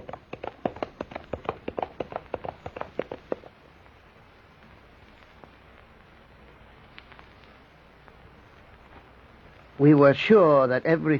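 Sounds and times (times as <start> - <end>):
horse hooves galloping: 0.0 - 4.0
speech: 9.8 - 11.1.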